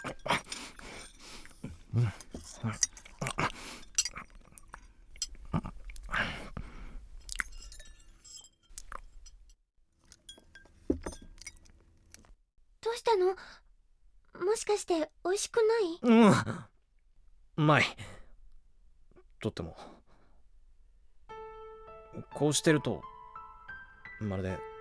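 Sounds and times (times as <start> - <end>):
light clinks of tableware: 0.0 - 3.2, 3.8 - 5.4, 7.3 - 11.8
person chewing a dish made from leftovers: 0.0 - 7.7, 8.7 - 9.3
speech: 2.0 - 2.9, 14.7 - 16.7, 17.6 - 18.0, 19.4 - 19.9, 22.4 - 23.1, 24.2 - 24.7.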